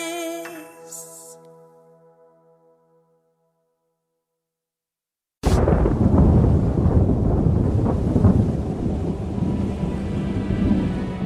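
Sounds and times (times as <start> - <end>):
thunder crack and rolling rumble during a snowstorm: 5.5 - 11.2.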